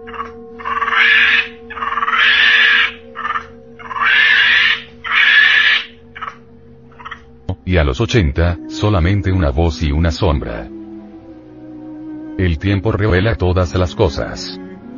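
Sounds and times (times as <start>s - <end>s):
monkey screeching calls: 0.0s - 7.3s
steady low hum: 0.0s - 14.9s
speech: 7.7s - 10.8s, 12.4s - 14.6s.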